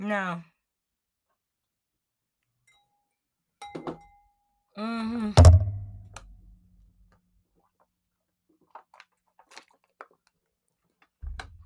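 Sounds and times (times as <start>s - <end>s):
speech: 0.0s - 0.5s, 4.8s - 5.6s
glass jiggling with faint clinks: 3.6s - 4.2s
dull low thump: 5.4s - 6.2s.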